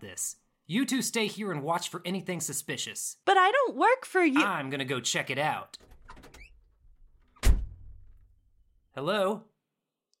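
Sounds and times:
speech: 0:00.0 - 0:05.9, 0:09.0 - 0:09.5
heavy thump of a door being pushed open with a low rumbling tail: 0:07.3 - 0:08.2.

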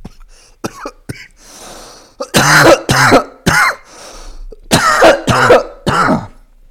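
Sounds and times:
person coughing harshly into the microphone: 0:00.0 - 0:01.4, 0:02.2 - 0:03.9, 0:04.6 - 0:06.5.

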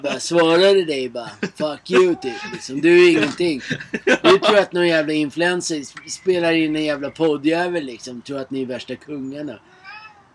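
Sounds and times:
laughter: 0:00.0 - 0:05.0
speech: 0:00.0 - 0:09.8
cat meowing: 0:01.9 - 0:03.4, 0:09.7 - 0:10.3.

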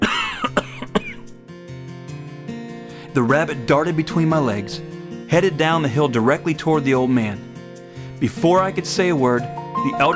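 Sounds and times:
low rumbling clearing of the throat: 0:00.0 - 0:01.3
person coughing in rough throaty hacks: 0:00.0 - 0:01.3
speech: 0:03.2 - 0:07.5, 0:08.2 - 0:10.1.

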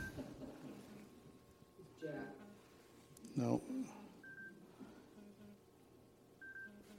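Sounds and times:
mobile phone ringing in a pocket with electronic beeps: 0:00.0 - 0:00.2, 0:04.2 - 0:04.6, 0:06.4 - 0:06.9
speech: 0:02.0 - 0:02.4, 0:03.3 - 0:04.1.

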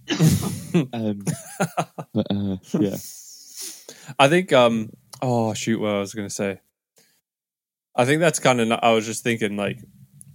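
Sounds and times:
man coughing: 0:00.0 - 0:01.6
laughter: 0:00.2 - 0:03.0
speech: 0:00.2 - 0:03.2, 0:03.9 - 0:06.7, 0:08.0 - 0:10.0.

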